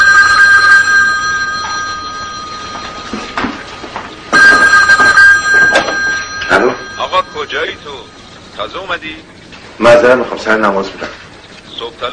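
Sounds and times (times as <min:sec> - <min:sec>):
telephone ringing: 0:00.0 - 0:09.0
speech: 0:08.6 - 0:11.2, 0:11.8 - 0:12.1.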